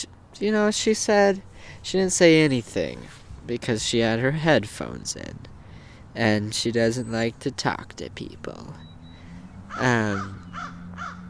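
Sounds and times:
speech: 0.4 - 5.5, 6.2 - 8.9, 9.8 - 10.8
crows cawing outdoors: 9.1 - 11.2.

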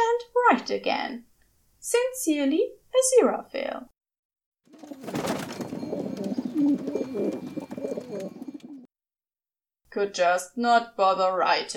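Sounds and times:
speech: 0.5 - 3.9, 6.6 - 8.4, 9.9 - 11.7
pigeon cooing: 4.7 - 8.9.

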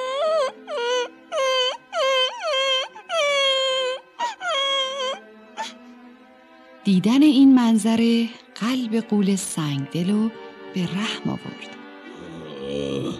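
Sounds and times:
young boy crying with wavering wails: 0.0 - 5.8
young boy gasping between wails: 5.6 - 5.9
speech: 6.8 - 11.8, 12.6 - 13.1.

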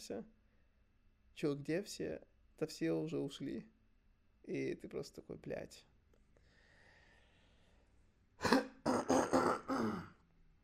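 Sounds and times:
speech: 0.1 - 0.4, 1.4 - 3.8, 4.4 - 5.9
person clearing throat: 8.4 - 10.2
person coughing with harsh raspy bursts: 8.4 - 10.2.

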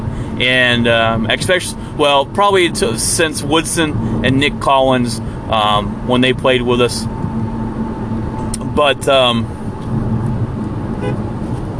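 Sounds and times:
road and engine rumble: 0.0 - 11.7
speech: 0.4 - 7.2, 8.8 - 9.6
car horn tooting at cyclists riding along the roadside in Texas: 11.0 - 11.3.

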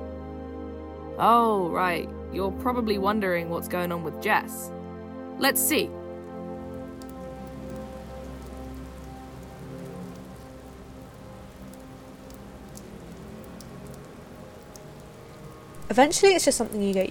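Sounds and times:
speech: 1.2 - 4.8, 5.4 - 6.0, 15.9 - 17.0
steady rain pouring onto a surface: 5.7 - 17.0.

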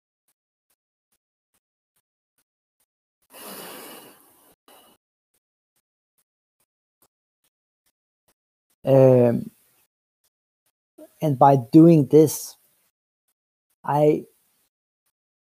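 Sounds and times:
long airy inhale in controlled combat breathing: 3.3 - 5.0
speech: 8.8 - 9.5, 11.2 - 12.6, 13.8 - 14.3.

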